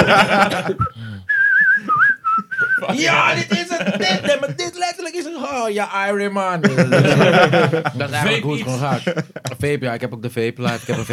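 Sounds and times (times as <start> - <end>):
laughter: 0.0 - 1.0, 1.6 - 5.2, 6.6 - 9.7, 10.6 - 11.1
speech: 0.1 - 1.1, 2.8 - 11.1
person whistling a short wavering melody: 0.8 - 2.9.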